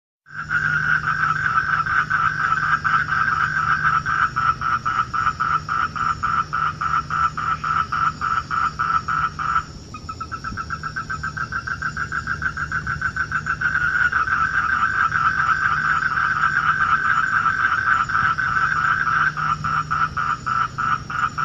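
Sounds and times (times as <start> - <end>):
Duttaphrynus melanostictus Asian toad calling in Singapore: 0.3 - 21.4.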